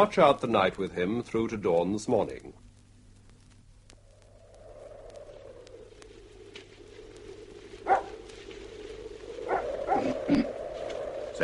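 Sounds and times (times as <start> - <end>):
speech: 0.0 - 2.7
steady low hum: 0.0 - 11.4
dog barking at night: 7.9 - 8.1.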